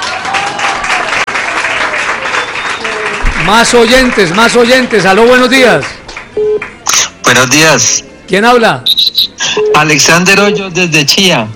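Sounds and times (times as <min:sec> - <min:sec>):
small audience clapping: 0:00.0 - 0:06.8
speech: 0:03.5 - 0:08.9, 0:09.8 - 0:11.5.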